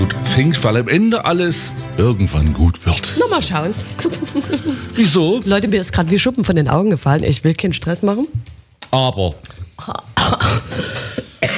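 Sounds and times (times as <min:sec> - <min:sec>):
speech: 0:00.1 - 0:11.0
laughter: 0:03.7 - 0:05.2
person coughing: 0:09.8 - 0:11.5.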